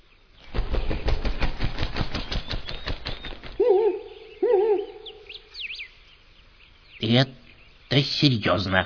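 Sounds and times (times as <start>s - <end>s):
owl wings flapping in flight: 0.4s - 3.8s
wavering hoot-like owl calls: 3.6s - 5.8s
speech: 7.1s - 8.8s.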